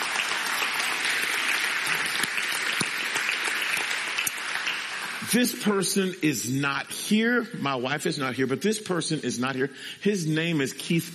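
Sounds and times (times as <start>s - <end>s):
crowd clapping: 0.0s - 5.8s
speech: 5.3s - 11.1s.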